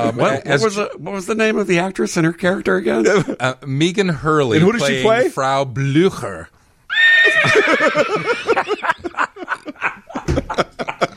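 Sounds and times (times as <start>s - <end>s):
speech: 0.0s - 8.3s
horse whinny: 6.9s - 8.3s
laughter: 7.2s - 11.1s.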